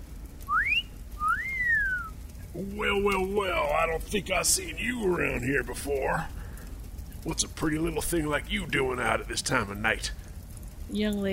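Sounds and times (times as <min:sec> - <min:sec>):
man giving a two-part wolf whistle: 0:00.5 - 0:02.2
speech: 0:02.6 - 0:06.4, 0:07.2 - 0:10.2, 0:10.9 - 0:11.3.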